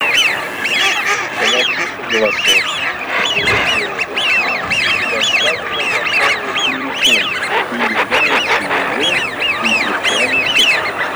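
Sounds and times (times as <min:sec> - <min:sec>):
steady hiss: 0:00.0 - 0:02.7, 0:05.2 - 0:11.1
female Eurasian wigeon nasal calls in Russia: 0:00.0 - 0:11.1
laughter: 0:00.0 - 0:11.1.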